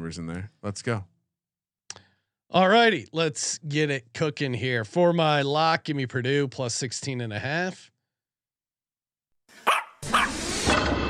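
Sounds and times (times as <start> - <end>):
speech: 0.1 - 1.1, 2.5 - 7.9
dog barking: 9.6 - 10.5.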